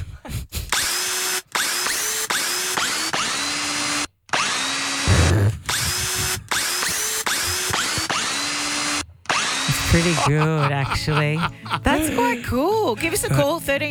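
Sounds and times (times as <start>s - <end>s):
power drill whirring a tune: 0.7s - 10.5s
laughter: 5.1s - 8.5s, 9.7s - 13.9s
speech: 10.0s - 13.9s.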